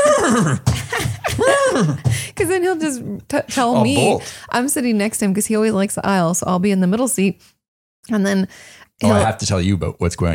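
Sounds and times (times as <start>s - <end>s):
person imitating a horse whinny: 0.0s - 0.7s
speech: 0.4s - 0.7s, 1.5s - 10.3s.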